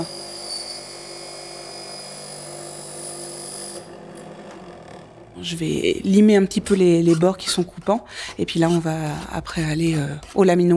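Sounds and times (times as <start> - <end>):
jeweler's saw cutting metal plate: 0.0 - 10.7
speech: 5.4 - 10.7.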